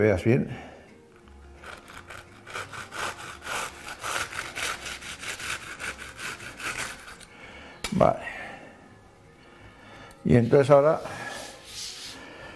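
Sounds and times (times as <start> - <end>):
speech: 0.0 - 0.7, 7.9 - 8.3, 10.3 - 11.1
knife sawing through puff pastry cakes to cut them to size: 1.2 - 7.3.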